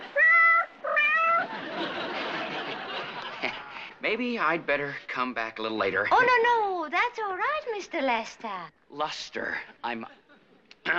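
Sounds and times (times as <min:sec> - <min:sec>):
cat meowing: 0:00.0 - 0:01.5
laughter: 0:01.2 - 0:04.0
speech: 0:04.1 - 0:10.2.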